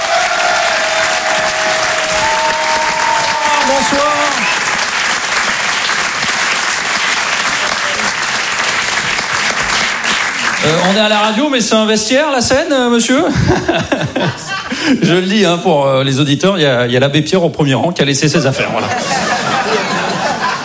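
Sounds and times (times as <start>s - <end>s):
comedy club audience whooping: 0.0s - 5.0s
live comedy club audience applause and cheering: 0.0s - 11.4s
man greeting the comedy club crowd: 0.8s - 4.8s
speech: 10.6s - 19.3s
laughter: 13.2s - 15.3s, 18.6s - 20.6s.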